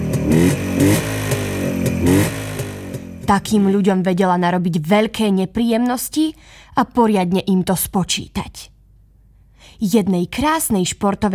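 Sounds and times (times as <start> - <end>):
motorcycle engine revving: 0.0 - 3.8
speech: 3.3 - 8.7, 9.6 - 11.3.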